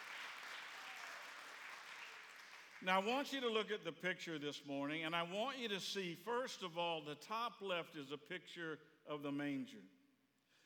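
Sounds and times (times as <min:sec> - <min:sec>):
church congregation clapping hands in praise during a morning service: 0:00.0 - 0:03.2
speech: 0:02.8 - 0:10.0.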